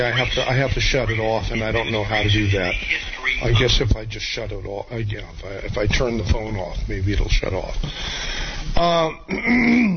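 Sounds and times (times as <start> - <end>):
speech: 0.0 - 9.9
person clearing throat: 8.9 - 9.9.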